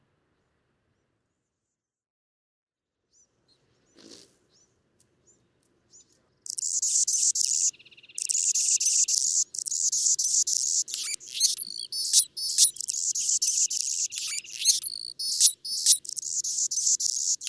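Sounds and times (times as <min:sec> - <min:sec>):
Anna's hummingbird singing harsh scratchy buzzes: 0:06.5 - 0:17.4
Anna's hummingbird thin chips and squeaks: 0:06.5 - 0:17.4.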